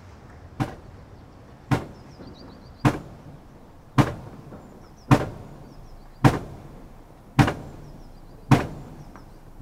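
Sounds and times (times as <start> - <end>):
low rumbling background: 0.0 - 9.6
heavy pile-driving blows for a wind turbine foundation: 0.6 - 1.0, 1.7 - 9.6.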